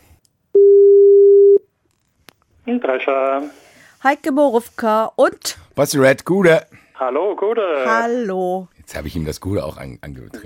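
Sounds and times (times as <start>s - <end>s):
telephone tone while placing a call: 0.6s - 1.6s
speech: 2.7s - 10.4s.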